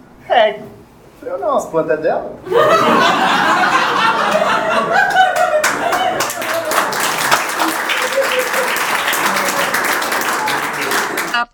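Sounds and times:
speech: 0.3 - 3.5
scattered laughter: 2.5 - 11.4
crowd applauding loudly: 2.5 - 11.5.

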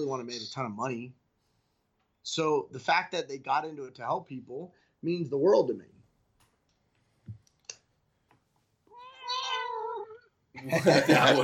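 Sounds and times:
speech: 0.0 - 1.2, 2.2 - 6.0, 10.6 - 11.4
soft clicks and taps: 6.4 - 8.6
cat meowing: 8.9 - 10.3
laughter: 10.6 - 11.4.

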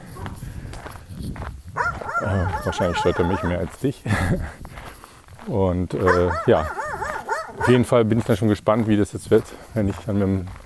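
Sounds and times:
dog barking: 1.8 - 3.6, 6.0 - 7.9
laughter: 2.2 - 4.6
speech: 2.3 - 4.8, 5.5 - 6.8, 7.6 - 10.6.

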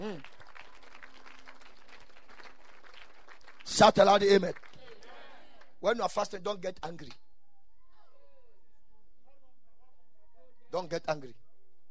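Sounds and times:
church congregation applauding: 0.0 - 5.7
speech: 3.8 - 4.6, 5.8 - 7.2, 10.7 - 11.4.

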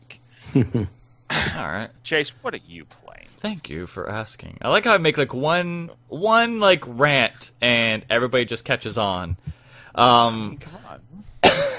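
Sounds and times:
speech: 0.5 - 11.3
person coughing: 1.3 - 1.7, 11.4 - 11.7.

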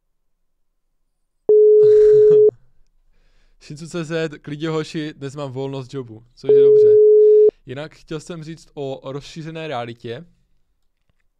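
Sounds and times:
outgoing phone call dialling tone: 1.5 - 2.5, 6.5 - 7.5
speech: 3.7 - 7.0, 7.7 - 10.4.

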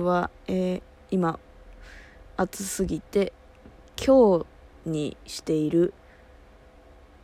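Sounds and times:
speech: 0.0 - 3.4, 4.0 - 6.0
electric fan whirring: 0.0 - 7.2.

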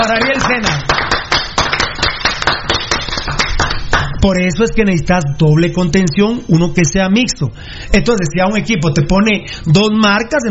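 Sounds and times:
speech: 0.0 - 0.9, 4.2 - 10.4
people clapping: 0.0 - 4.2.

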